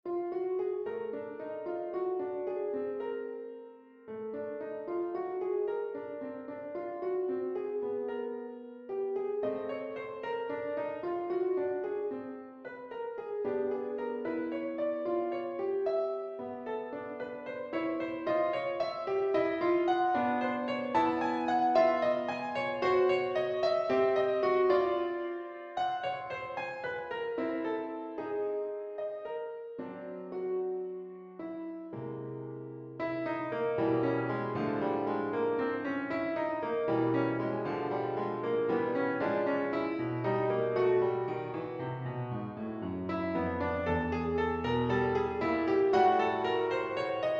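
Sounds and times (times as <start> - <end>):
piano piece: 0.0 - 47.3.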